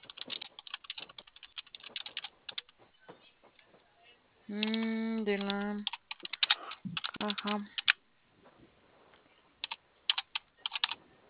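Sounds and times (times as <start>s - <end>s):
keystrokes tapped on a computer keyboard: 0.0s - 2.8s, 4.6s - 8.0s, 9.6s - 11.0s
speech: 4.5s - 5.9s, 7.2s - 7.8s.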